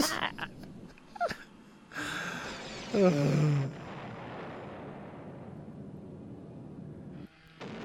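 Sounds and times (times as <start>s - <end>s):
booming explosion blasts and crashes in an audio drama: 2.4s - 7.8s
long rumbling tail: 2.4s - 7.8s.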